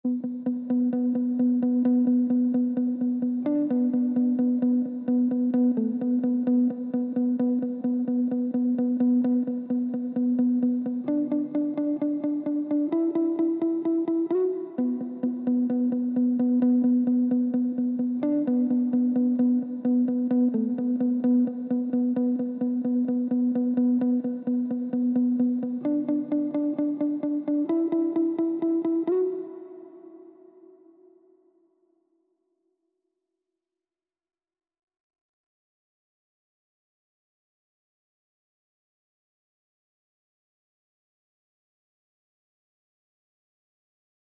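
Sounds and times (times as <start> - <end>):
plucked guitar melody loop in D major: 0.1 - 30.3.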